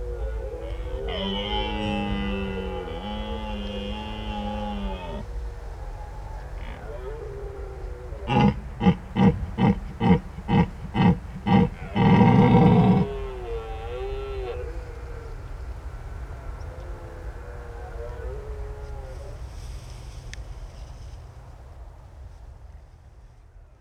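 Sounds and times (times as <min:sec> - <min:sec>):
red deer stag rutting bellows in daytime at a marsh in France: 0:00.0 - 0:05.3, 0:08.1 - 0:14.7
continuous low mechanical rumble: 0:00.0 - 0:15.8.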